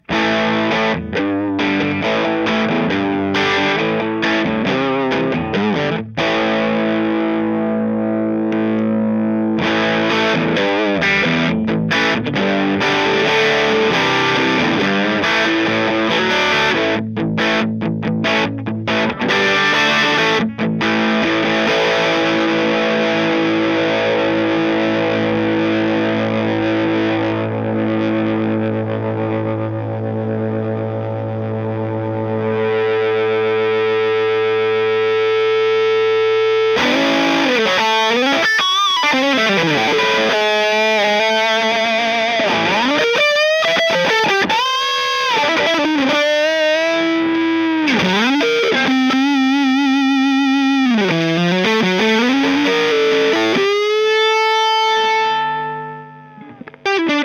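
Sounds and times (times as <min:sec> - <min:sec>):
distorted Stratocaster electric guitar: 0:00.0 - 0:57.2.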